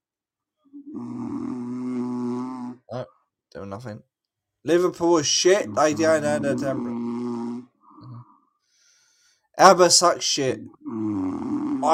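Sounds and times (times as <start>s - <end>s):
person snoring: 0.8s - 3.0s, 5.7s - 8.4s, 10.8s - 11.9s
speech: 3.7s - 6.9s, 9.6s - 11.2s.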